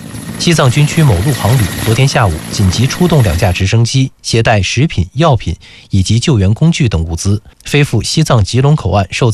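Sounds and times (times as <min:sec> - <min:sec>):
helicopter rotor and engine drone: 0:00.0 - 0:04.0
person narrating: 0:00.4 - 0:09.3.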